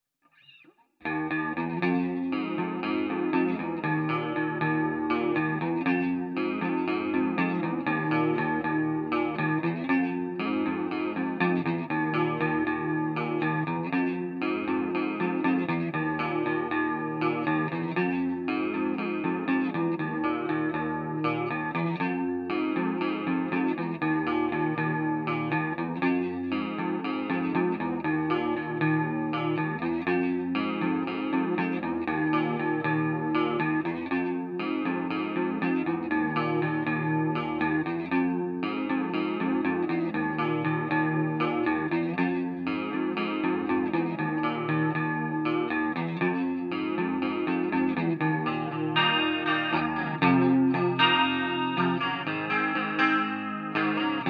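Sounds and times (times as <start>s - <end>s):
half step clean electric guitar: 0.3s - 54.2s.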